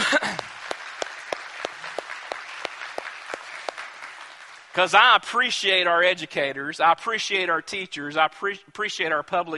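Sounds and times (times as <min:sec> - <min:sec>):
crowd applauding: 0:00.0 - 0:05.1
sharp evenly spaced claps: 0:00.0 - 0:05.2
speech: 0:04.8 - 0:09.5.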